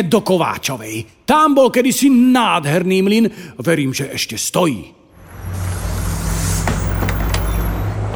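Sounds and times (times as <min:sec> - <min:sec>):
speech: 0:00.0 - 0:05.0
bus engine rumbling with a low droning hum: 0:05.4 - 0:08.0.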